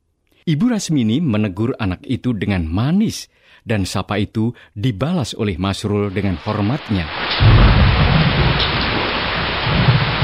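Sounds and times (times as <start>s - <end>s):
speech: 0.5s - 8.1s
heavy rain: 6.1s - 10.2s
thunder rumbling: 7.1s - 10.2s.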